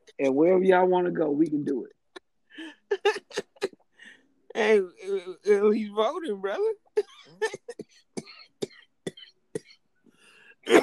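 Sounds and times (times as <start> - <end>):
speech: 0.2 - 2.0, 4.6 - 7.8, 10.6 - 10.8
person coughing: 7.0 - 9.7, 10.6 - 10.8.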